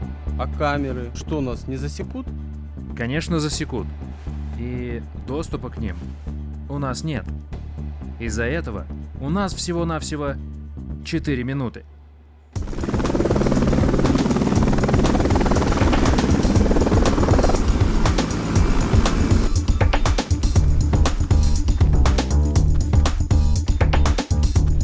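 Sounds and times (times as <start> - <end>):
speech: 0.4 - 7.6, 8.2 - 10.5, 11.0 - 11.9
helicopter engine roar: 12.6 - 21.7
helicopter rotor chop: 12.6 - 24.7.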